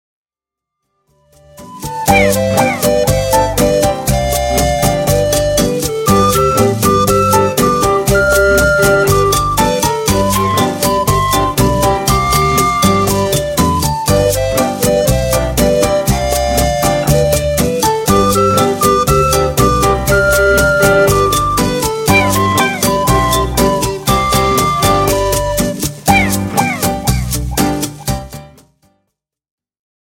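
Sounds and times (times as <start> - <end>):
syncopated rhythm: 1.6 - 28.6.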